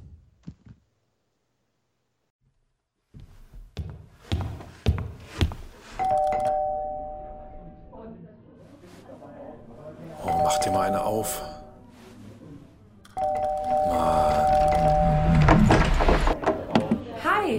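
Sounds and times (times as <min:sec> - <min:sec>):
electronic doorbell chime at a home's front door: 0:06.0 - 0:07.6, 0:10.2 - 0:11.7, 0:13.2 - 0:15.5
voices: 0:08.7 - 0:17.5
speech: 0:10.9 - 0:11.5
sharp thuds and clatters: 0:15.4 - 0:17.0.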